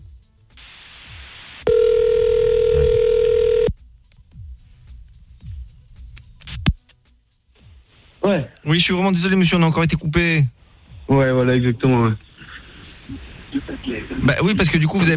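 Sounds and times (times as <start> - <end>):
hiss on telephone line: 0.6 - 1.7, 7.8 - 8.3, 11.9 - 14.9
telephone ring tone while calling someone back: 1.7 - 3.7
speech: 8.3 - 12.3, 13.8 - 15.1.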